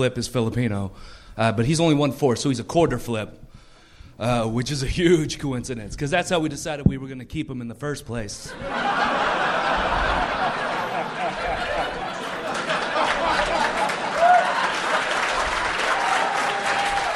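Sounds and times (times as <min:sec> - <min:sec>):
speech: 0:00.0 - 0:03.5, 0:04.2 - 0:09.2
scattered laughs: 0:08.6 - 0:15.4
live comedy show audience applauding in St Louis: 0:09.5 - 0:17.1.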